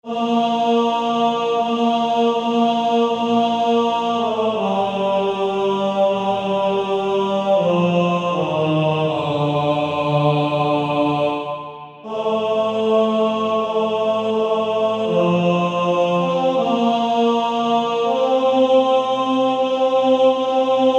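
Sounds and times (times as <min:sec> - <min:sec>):
first tenor of a male choir singing: 0:00.0 - 0:20.9.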